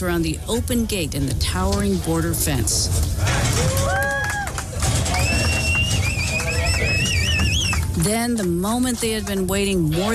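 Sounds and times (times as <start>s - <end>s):
speech: 0.0s - 3.8s, 8.0s - 10.1s
rumble of cattle hooves and movement: 0.0s - 9.7s
cowboys whistling and calling while herding cattle: 5.1s - 7.9s.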